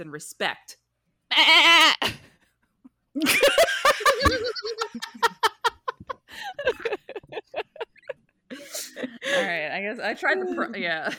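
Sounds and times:
speech: 0.0 - 2.2, 3.2 - 5.2, 9.3 - 11.1
person imitating a sea goat bleat: 1.3 - 2.0
rhythmic stuttering laughter: 3.2 - 9.1.

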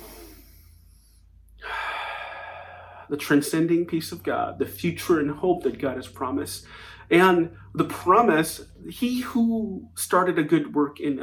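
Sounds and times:
deep inhale during a guided prayer: 0.0 - 3.1, 6.6 - 7.8
speech: 3.1 - 11.2.

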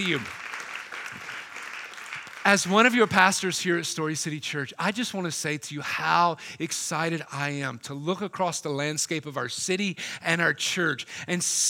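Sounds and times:
speech: 0.0 - 0.4, 2.4 - 11.6
large crowd applauding at a church: 0.0 - 3.1.

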